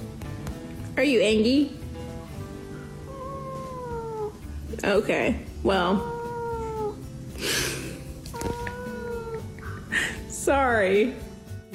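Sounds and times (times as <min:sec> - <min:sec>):
speech: 0:01.0 - 0:01.8, 0:04.8 - 0:06.2, 0:10.5 - 0:11.3
white cat meowing: 0:03.0 - 0:04.5, 0:05.8 - 0:07.0, 0:08.3 - 0:09.5.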